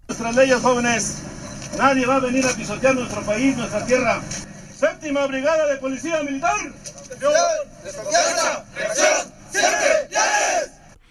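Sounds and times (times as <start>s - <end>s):
speech: 0.2s - 10.7s
large group of uniformed immigration officers shouting a battle cry in unison: 7.3s - 10.8s.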